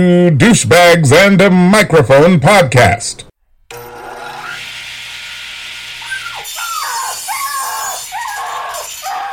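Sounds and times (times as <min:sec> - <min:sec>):
speech: 0:00.0 - 0:03.3
harsh steady rasp of sawing: 0:06.0 - 0:09.3
high sliding yelps and cries: 0:06.0 - 0:09.3.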